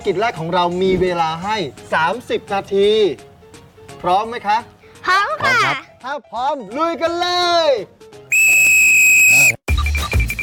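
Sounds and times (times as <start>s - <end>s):
speech: 0.0s - 3.3s, 4.0s - 8.0s
loud sustained whistle blast signalling the start of a search task: 8.3s - 10.4s.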